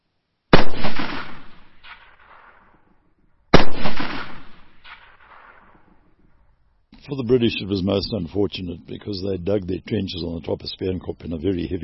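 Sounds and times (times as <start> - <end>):
Boer Mauser rifle shots in battle at sunrise: 0.5 - 2.8, 3.5 - 6.1
speech: 7.1 - 11.8.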